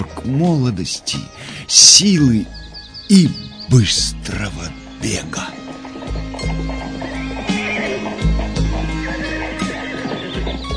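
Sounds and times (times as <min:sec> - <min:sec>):
speech: 0:00.2 - 0:05.6
faint hoof clip-clops: 0:04.8 - 0:10.7
horse neighing and whinnying: 0:05.5 - 0:10.6.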